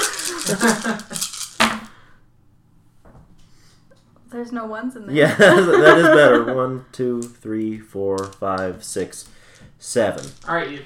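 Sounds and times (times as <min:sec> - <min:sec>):
laughter: 0:00.0 - 0:01.2, 0:05.2 - 0:06.8
twelve dice rolled and rattling across a hard surface: 0:00.0 - 0:01.9, 0:07.2 - 0:10.8
speech: 0:00.5 - 0:01.8, 0:04.3 - 0:10.8.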